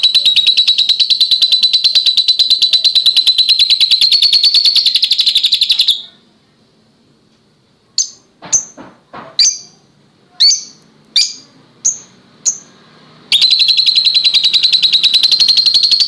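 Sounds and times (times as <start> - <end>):
Oriental magpie-robin singing trills and chirps: 0.0 - 6.2, 10.4 - 16.0.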